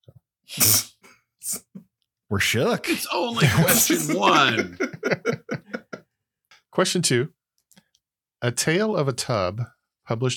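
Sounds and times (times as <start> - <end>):
speech: 0.5 - 0.9, 2.3 - 5.5, 6.8 - 7.4, 8.4 - 10.3
sharp explosive cough: 2.9 - 4.8
laughter: 2.9 - 6.1.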